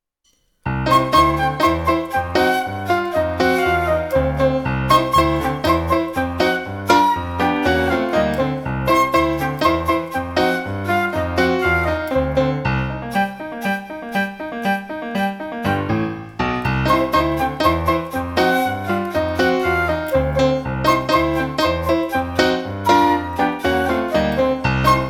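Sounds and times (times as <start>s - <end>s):
jazz music: 0.7s - 25.0s
flute part in jazz music: 0.8s - 15.9s, 16.7s - 25.0s.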